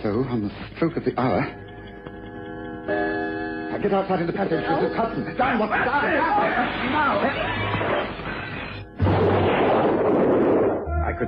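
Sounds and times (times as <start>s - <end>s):
speech: 0.0s - 1.7s, 3.8s - 8.0s
window glass shattering: 9.0s - 10.8s
dense roaring crash of debris: 9.0s - 10.9s
parcel bomb blast: 9.0s - 11.2s.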